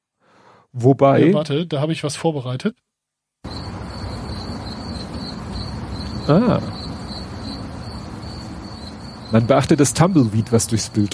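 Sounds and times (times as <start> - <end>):
soft hiss: 0.0 - 11.1
speech: 0.7 - 2.9, 6.3 - 6.8, 9.3 - 11.1
high-pitched cricket chirping sound effect: 3.4 - 11.1.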